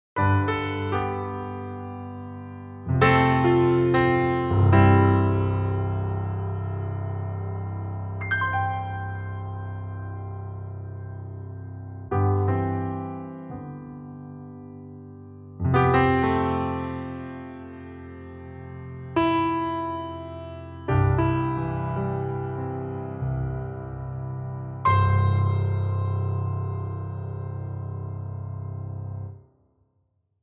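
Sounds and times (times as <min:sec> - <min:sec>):
Steinway D piano: 0:00.0 - 0:29.6.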